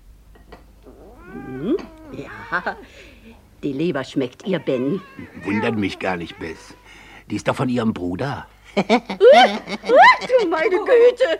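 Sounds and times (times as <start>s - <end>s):
fat house cat meowing: 0.8s - 3.4s, 4.0s - 7.2s
speech: 2.5s - 11.3s.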